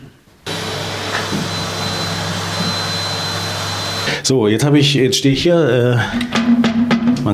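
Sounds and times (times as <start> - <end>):
vacuum cleaner running: 0.5 - 4.2
speech: 4.3 - 7.3.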